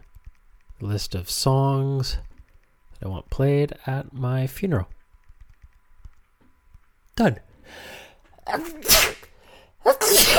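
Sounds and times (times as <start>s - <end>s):
speech: 0.8s - 2.3s, 3.0s - 5.0s, 7.2s - 9.1s
person sneezing: 8.4s - 10.3s.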